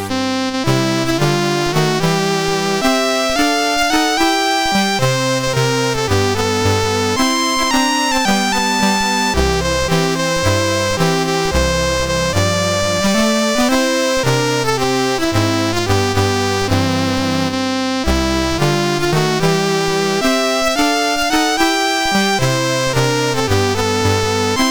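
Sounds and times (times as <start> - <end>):
blues music: 0.1 - 24.6.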